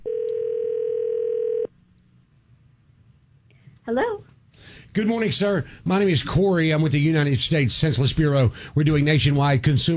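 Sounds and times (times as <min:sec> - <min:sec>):
steady telephone dial tone: 0:00.0 - 0:01.7
faint noise: 0:00.0 - 0:09.9
speech: 0:03.9 - 0:09.9.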